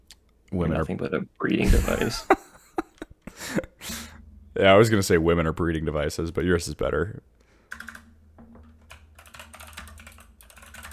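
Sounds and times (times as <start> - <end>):
speech: 0.5 - 2.5, 4.6 - 7.4
typing on a clicky computer keyboard: 7.7 - 10.9.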